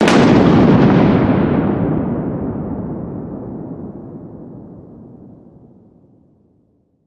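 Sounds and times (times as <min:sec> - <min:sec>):
thunder clap: 0:00.0 - 0:05.1.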